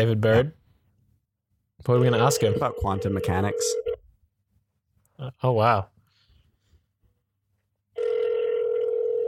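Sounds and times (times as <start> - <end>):
speech: 0.0 - 0.6, 1.8 - 3.9, 5.2 - 5.9
telephone ringing tone while placing a call: 2.0 - 4.0, 8.0 - 9.2.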